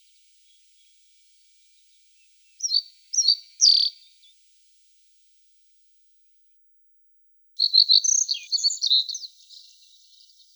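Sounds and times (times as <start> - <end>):
pine bunting singing thin high chirps and trills: 2.6 - 4.0, 7.6 - 10.5.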